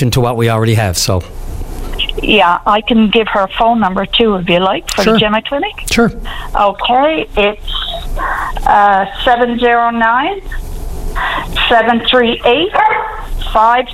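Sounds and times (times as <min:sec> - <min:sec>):
speech: 0:00.0 - 0:01.6, 0:02.2 - 0:13.9
dog barking and yipping: 0:12.7 - 0:13.3.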